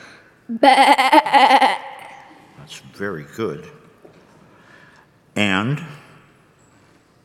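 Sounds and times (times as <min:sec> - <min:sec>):
speech: 0:00.5 - 0:01.9, 0:02.7 - 0:03.8, 0:05.4 - 0:06.0
person imitating a sheep with a loud wavering nasal bleat: 0:00.5 - 0:02.2.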